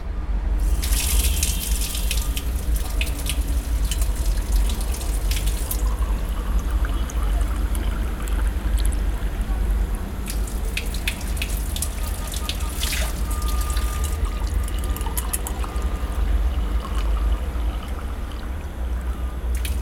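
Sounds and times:
constant low rumble of outdoor ambience: 0.0s - 19.8s
faint voices: 0.0s - 19.8s
running water splashing from a public street fountain: 0.6s - 8.9s, 10.2s - 15.6s.

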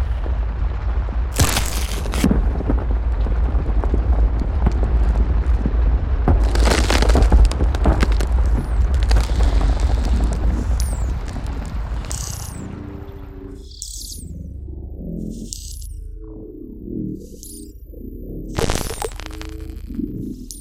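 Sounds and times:
dense heavy rumble of monstrous creature texture: 0.0s - 13.4s
low insect-like clicks and chitters: 6.4s - 12.7s, 13.6s - 14.3s, 15.3s - 15.9s, 18.6s - 20.5s.

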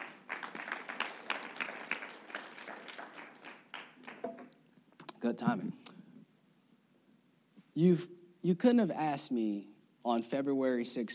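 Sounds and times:
crowd applauding: 0.0s - 4.6s
speech: 5.2s - 5.8s, 7.8s - 11.1s.

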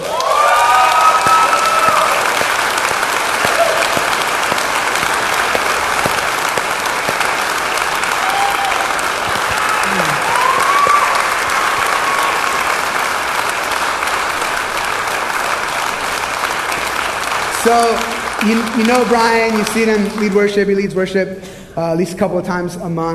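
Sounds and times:
audience whistles and cheers: 0.0s - 2.7s, 3.4s - 4.2s, 8.1s - 12.8s
large audience applauding: 0.0s - 20.8s
speech: 17.7s - 23.1s.

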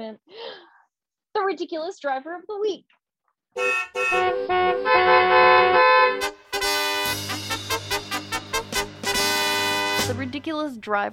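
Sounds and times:
speech: 0.0s - 0.4s, 1.4s - 3.0s, 3.6s - 6.3s, 10.1s - 11.1s
car horn honking: 3.6s - 10.1s.

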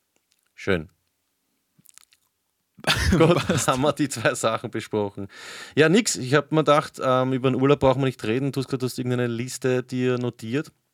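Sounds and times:
speech: 0.6s - 1.0s, 2.8s - 10.8s
loud smacking while chewing: 1.8s - 2.3s
wet mouth clicks from chewing: 1.8s - 2.4s
laughter: 2.8s - 4.4s.

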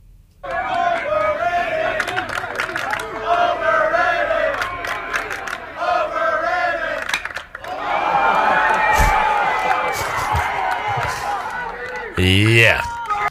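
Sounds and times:
large stadium crowd chanting in a rhythmic sing-song pattern: 0.4s - 13.2s
baseball bat hitting ball: 7.0s - 7.5s
laughter: 7.7s - 13.2s.

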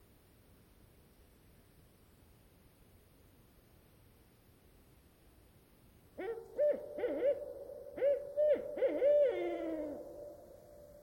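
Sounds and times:
lone barred owl hooting at night in Queets river valley rain forest: 6.2s - 11.0s.

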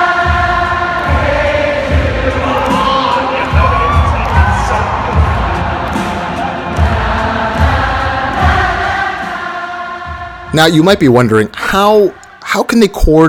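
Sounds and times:
rhythmic thumping: 0.0s - 12.3s
large concert crowd roaring and cheering: 1.0s - 9.6s
speech: 10.6s - 13.2s.

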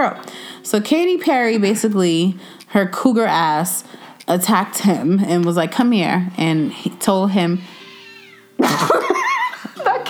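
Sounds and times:
speech: 0.0s - 7.8s, 8.6s - 9.0s
cat yowling loudly outside: 7.6s - 8.6s
laughter: 8.6s - 10.0s.

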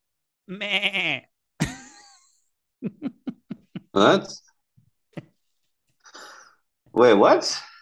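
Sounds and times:
person imitating a sheep bleating: 0.5s - 1.3s
speech: 0.5s - 1.3s, 2.8s - 3.2s, 4.0s - 4.4s, 7.0s - 7.7s
laughter: 1.6s - 4.4s.

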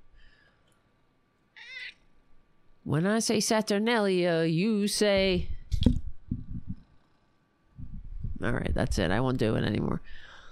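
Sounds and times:
cat meowing: 1.6s - 2.0s
speech: 2.8s - 5.9s, 8.5s - 10.3s.

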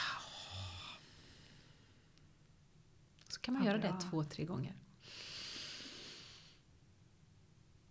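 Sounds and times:
slow relaxing exhale after held breath: 0.0s - 2.0s, 5.0s - 6.6s
speech: 3.4s - 5.2s.

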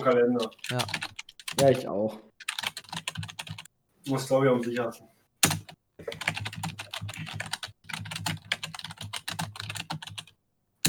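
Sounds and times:
speech: 0.0s - 2.3s, 4.0s - 5.1s
typing on a computer keyboard: 0.4s - 1.7s, 2.4s - 3.7s, 5.4s - 10.8s.

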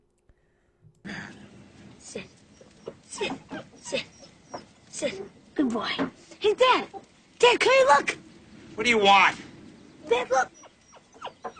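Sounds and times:
rustling and shuffling of a puppy moving around: 1.4s - 11.5s
speech: 2.1s - 2.4s, 3.1s - 4.2s, 5.0s - 8.2s, 8.8s - 9.4s, 10.1s - 10.6s
puppy whimpering: 2.3s - 5.3s, 10.2s - 11.5s.

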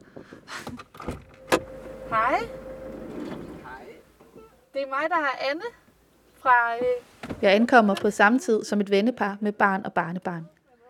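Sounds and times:
mechanical clunks and rattles: 0.8s - 4.4s
car pulling up off a country road: 1.2s - 4.4s
brief steady whine: 1.4s - 4.0s
speech: 2.1s - 2.6s, 4.8s - 5.8s, 6.4s - 10.6s.

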